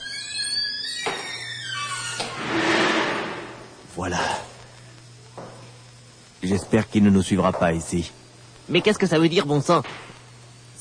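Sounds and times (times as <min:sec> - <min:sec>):
heavy door creaking in a disused factory: 0:00.0 - 0:03.8
heavy door slamming in a disused factory: 0:02.2 - 0:03.7
speech: 0:04.0 - 0:04.4, 0:06.5 - 0:10.1.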